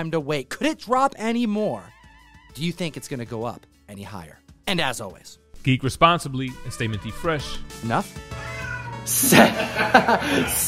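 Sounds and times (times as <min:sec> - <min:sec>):
speech: 0:00.0 - 0:01.9, 0:02.5 - 0:10.6
cat meowing loudly: 0:08.3 - 0:09.2
laughter: 0:09.1 - 0:10.6.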